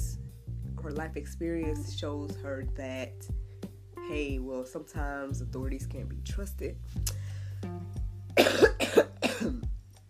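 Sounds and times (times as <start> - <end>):
speech: 0.8 - 3.4, 4.0 - 7.8, 8.5 - 9.6
harsh broadband coughs: 8.4 - 9.7.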